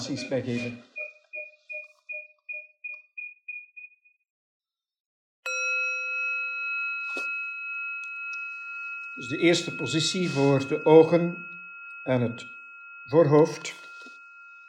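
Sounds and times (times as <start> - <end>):
speech: 0.0 - 0.9, 9.2 - 13.8
small bell ringing for a change of position in a guided session: 5.5 - 14.6.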